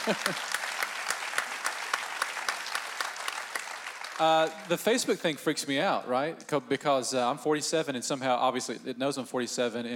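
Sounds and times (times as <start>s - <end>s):
laughter: 0.0s - 0.6s
speech: 0.0s - 0.6s, 4.2s - 9.9s
crowd applauding: 0.0s - 5.2s.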